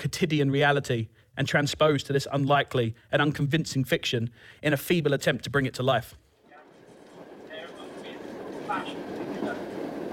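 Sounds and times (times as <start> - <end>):
speech: 0.0 - 6.2
low rumble inside a moving train carriage: 6.5 - 10.1.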